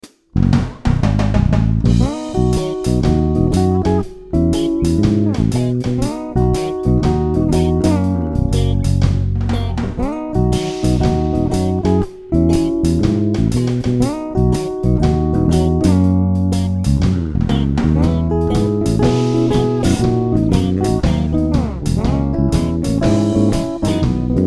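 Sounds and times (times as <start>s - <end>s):
reggae bass: 0.4s - 24.4s.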